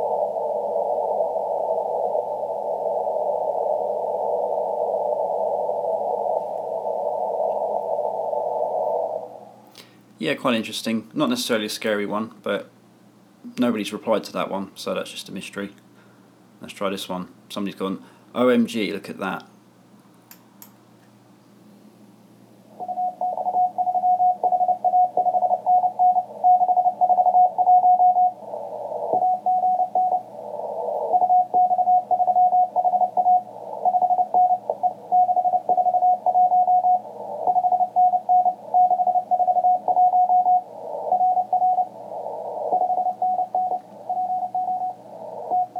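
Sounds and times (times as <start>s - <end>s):
radio hiss and static: 0.0s - 12.7s, 22.8s - 45.7s
speech: 10.2s - 12.8s, 13.6s - 15.8s, 16.6s - 19.5s
Morse code high beep over a radio: 22.9s - 28.4s, 31.1s - 45.7s.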